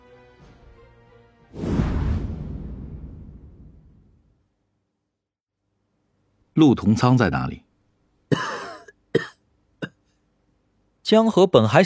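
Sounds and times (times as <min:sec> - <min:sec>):
speech: 0:06.6 - 0:07.7, 0:11.1 - 0:11.8
harsh coughing after choking on cigarette smoke: 0:08.3 - 0:10.2.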